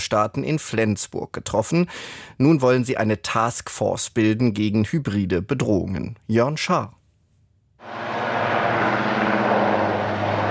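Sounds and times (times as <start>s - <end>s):
speech: 0.1s - 7.0s
police helicopter roar with rotor hum: 7.8s - 10.5s.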